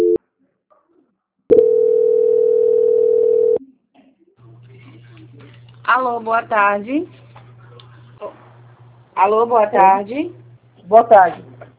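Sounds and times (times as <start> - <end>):
steady mid-pitched telephone tone during a call transfer: 0.0 - 0.2, 1.5 - 3.6
faint low hum: 1.5 - 11.7
speech: 6.0 - 7.2, 9.2 - 11.5.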